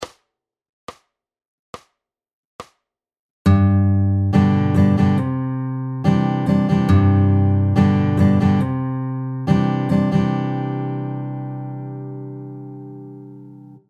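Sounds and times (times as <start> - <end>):
guitar strumming varying patterns in a ballad: 3.5 - 13.8.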